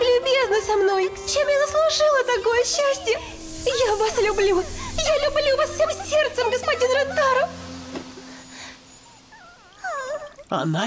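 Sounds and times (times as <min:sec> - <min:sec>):
speech: 0:00.7 - 0:07.6, 0:10.5 - 0:10.8
person imitating a puppy's whimper: 0:09.4 - 0:10.5.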